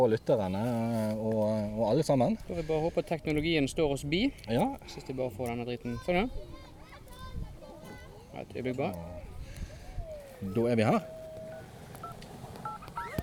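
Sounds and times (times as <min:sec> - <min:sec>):
speech: 0:00.0 - 0:06.5, 0:08.4 - 0:09.3, 0:10.4 - 0:11.2
indistinct chatter at a seaside tavern: 0:04.8 - 0:13.2
child's voice: 0:05.8 - 0:08.3
electronic phone dialing tones: 0:10.0 - 0:13.2.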